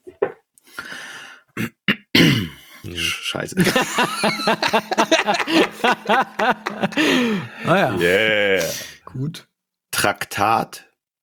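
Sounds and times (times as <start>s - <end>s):
raspy throat clearing: 1.6s - 3.1s
speech: 1.6s - 10.9s
laughter: 2.9s - 9.0s.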